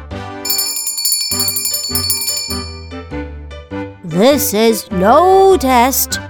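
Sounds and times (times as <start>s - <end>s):
bright metallic bell ringing in rapid trilling bursts: 0.5s - 3.0s
speech: 4.2s - 6.2s.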